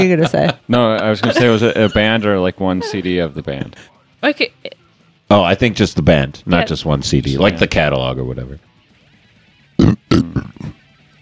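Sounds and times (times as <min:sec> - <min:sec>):
speech: 0:00.0 - 0:08.7, 0:09.8 - 0:10.8
loud gurgly throaty burp: 0:09.8 - 0:10.8.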